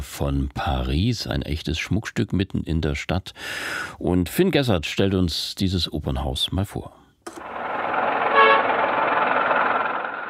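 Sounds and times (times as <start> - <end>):
speech: 0.2 - 7.5
dense street traffic roaring in a busy city: 7.3 - 10.2
short bright car horn honk: 8.3 - 8.8.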